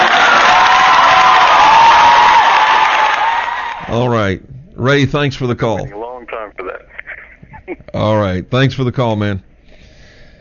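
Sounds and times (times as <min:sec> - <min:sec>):
crowd clapping: 0:00.0 - 0:03.9
speech: 0:04.0 - 0:06.0, 0:07.7 - 0:09.5.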